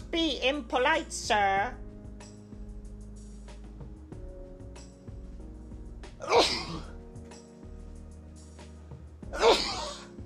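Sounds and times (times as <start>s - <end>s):
speech: 0.1s - 1.8s, 6.2s - 6.9s
person sneezing: 6.2s - 7.0s, 9.4s - 10.1s.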